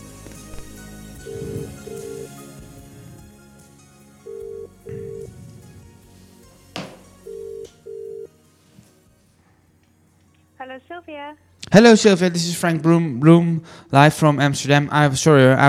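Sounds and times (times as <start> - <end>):
faint hiss on a phone line: 0.0 - 14.0
ringback tones of an outgoing phone call made from Amsterdam: 1.2 - 2.4, 4.3 - 5.3, 7.2 - 8.3
speech: 10.7 - 15.6.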